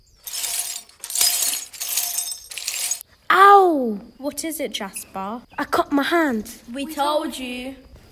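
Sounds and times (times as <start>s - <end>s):
broken glass being scraped and knocked out of a window frame: 0.2s - 3.0s
speech: 3.8s - 7.9s.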